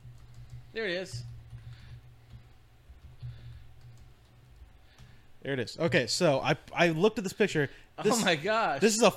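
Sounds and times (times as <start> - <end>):
typing on a computer keyboard: 0.0 - 5.2
steady low hum: 0.0 - 9.1
speech: 0.8 - 1.3, 5.4 - 9.1.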